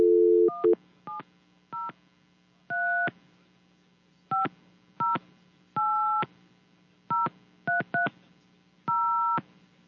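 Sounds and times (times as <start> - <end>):
telephone dial tone: 0.0 - 0.8
faint steady hum: 0.0 - 9.8.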